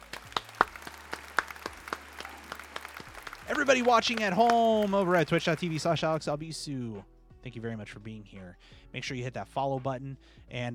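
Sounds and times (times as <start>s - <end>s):
hand clapping from one or a few people: 0.0s - 6.4s
speech: 3.5s - 10.7s.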